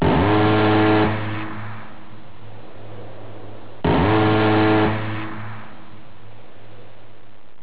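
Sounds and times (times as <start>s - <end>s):
20mm Vulcan cannon firing: 0.0s - 2.2s, 3.8s - 6.0s.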